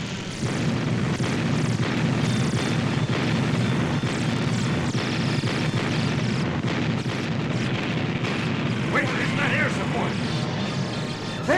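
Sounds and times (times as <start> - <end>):
aircraft noise: 0.0 - 11.5
artillery battery firing during a battle against alien spacecraft: 0.3 - 11.5.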